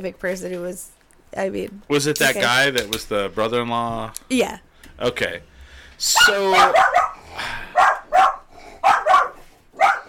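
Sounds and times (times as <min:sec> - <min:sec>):
speech: 0:00.0 - 0:07.6
dog barking at a newly arrived person: 0:06.5 - 0:10.0.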